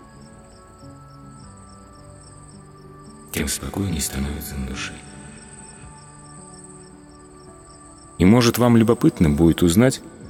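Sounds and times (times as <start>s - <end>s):
crickets chirping through a summer night: 0.0s - 10.2s
speech: 3.4s - 5.1s, 8.2s - 10.2s.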